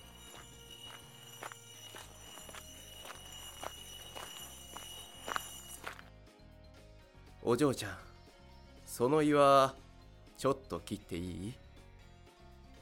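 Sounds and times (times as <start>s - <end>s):
footsteps of a man walking closer carrying a very large tree: 0.0s - 6.1s
speech: 7.5s - 8.1s, 9.0s - 9.8s, 10.4s - 11.6s.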